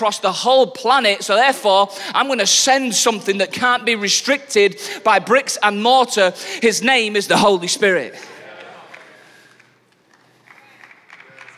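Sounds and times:
speech: 0.0s - 8.4s
scattered hesitant audience clapping: 8.4s - 11.5s.

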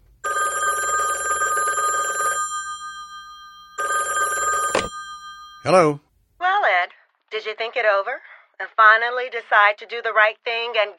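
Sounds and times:
telephone ringing with a bright electronic trill: 0.2s - 5.9s
speech: 5.6s - 6.0s, 7.3s - 10.9s.

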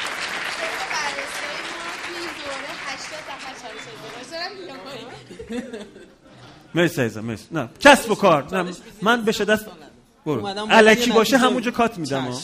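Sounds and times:
crowd clapping: 0.0s - 4.9s
speech: 2.5s - 12.4s
scattered chuckles: 5.0s - 6.7s.

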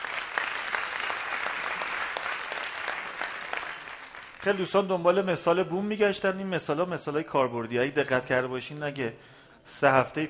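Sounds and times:
audience applause: 0.0s - 4.9s
speech: 4.4s - 10.2s.

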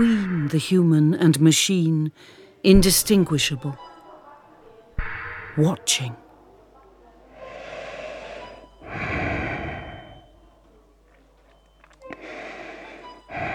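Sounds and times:
speech: 0.0s - 3.9s, 5.6s - 6.2s
heavy breathing inside a protective suit and visor: 7.2s - 10.4s, 12.1s - 13.5s.

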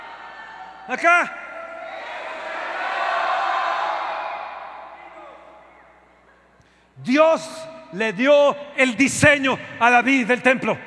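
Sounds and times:
church audience shouting in response to a preacher: 0.0s - 6.0s
speech: 0.9s - 1.4s, 7.0s - 10.8s.

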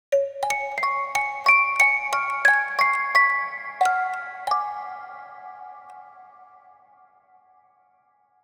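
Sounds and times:
horror music box tune: 0.2s - 6.0s.

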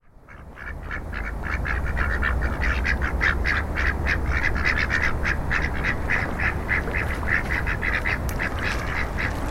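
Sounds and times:
ducks quacking: 0.3s - 9.4s.

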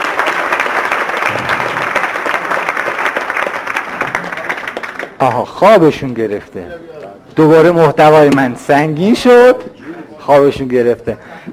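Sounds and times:
audience clapping: 0.0s - 5.4s
speech: 5.2s - 9.7s, 10.3s - 11.5s.

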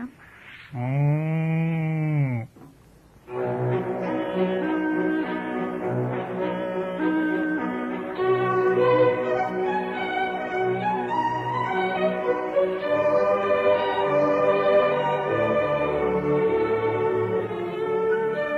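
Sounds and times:
speech: 0.7s - 1.1s
cow mooing: 0.8s - 2.6s
steady tonal backdrop: 2.9s - 18.5s.

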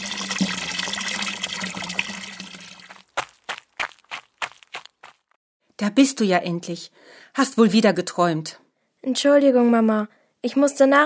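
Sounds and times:
water pouring into a water jug: 0.0s - 3.1s
speech: 5.8s - 11.0s.

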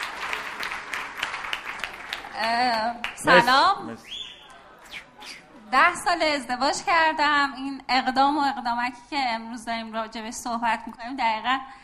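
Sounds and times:
group clapping in steady dense applause: 0.0s - 5.4s
speech: 2.4s - 4.2s, 5.7s - 11.8s.

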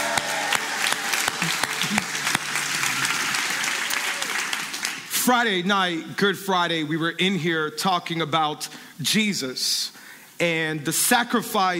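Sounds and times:
church congregation clapping at an Easter service: 0.0s - 5.2s
speech: 5.3s - 11.7s.

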